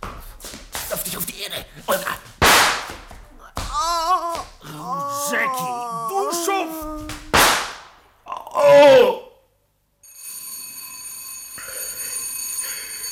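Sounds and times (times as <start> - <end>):
speech: 1.0 - 2.3
sharp crack: 2.4 - 3.0, 7.1 - 8.1
brief wailing vocal sound: 3.6 - 7.4, 8.3 - 9.4
service bell ringing with a bright metallic tone: 10.0 - 13.1.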